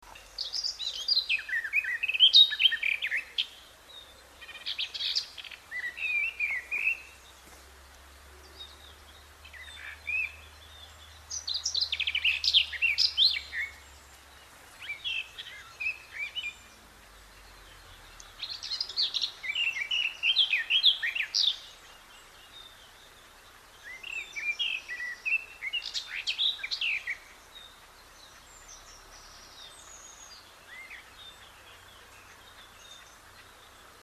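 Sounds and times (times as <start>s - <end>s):
garden warbler singing: 0.0s - 34.0s.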